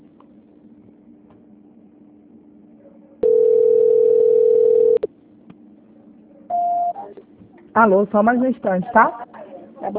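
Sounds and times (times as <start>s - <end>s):
low hum: 0.0s - 9.9s
telephone call transfer tone: 3.2s - 5.1s
speech: 7.8s - 9.3s.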